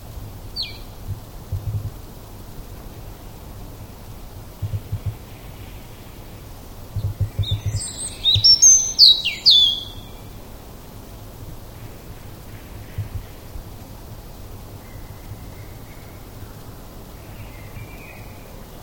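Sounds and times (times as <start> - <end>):
low rumbling background noise: 0.0 - 18.8
European robin song, Erithacus rubecula: 0.6 - 1.0, 7.0 - 10.3.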